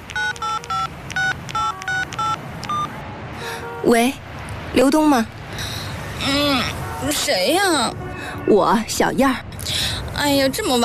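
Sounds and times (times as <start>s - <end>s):
telephone keypad dialing tones: 0.0s - 2.9s
speech: 3.8s - 9.5s, 10.2s - 10.8s.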